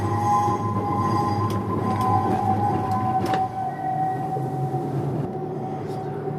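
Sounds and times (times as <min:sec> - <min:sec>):
tram rolling slowly into its stop: 0:00.0 - 0:06.3.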